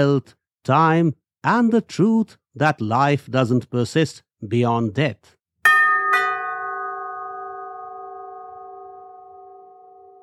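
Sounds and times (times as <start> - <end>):
speech: 0.0 - 5.4
doorbell ding-dong chime: 5.7 - 10.2.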